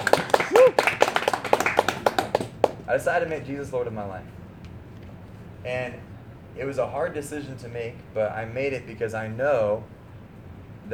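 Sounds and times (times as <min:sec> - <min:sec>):
audience clapping: 0:00.0 - 0:02.9
speech: 0:02.9 - 0:04.4, 0:05.6 - 0:10.0.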